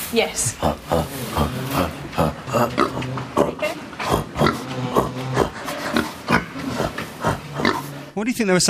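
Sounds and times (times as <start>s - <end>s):
speech: 0.1s - 3.4s, 8.2s - 8.6s
actors imitating pig grunts and oinks: 0.4s - 8.1s.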